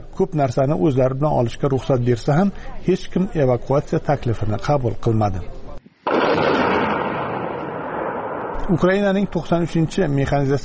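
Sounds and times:
speech: 0:00.2 - 0:05.6, 0:08.7 - 0:10.6
explosion in military footage: 0:06.0 - 0:09.0.

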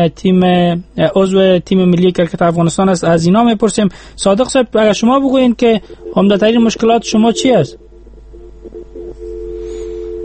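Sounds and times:
speech: 0:00.0 - 0:07.8
garbled phone line noise: 0:05.8 - 0:09.4
phone busy tone after a call is cut off: 0:05.8 - 0:10.2.

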